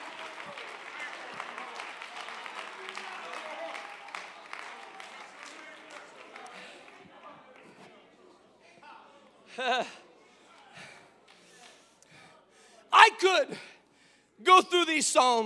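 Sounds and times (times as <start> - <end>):
crowd clapping: 0.0 - 7.9
speech: 9.6 - 10.0, 13.2 - 13.7, 14.5 - 15.4
raised voice: 12.9 - 13.6.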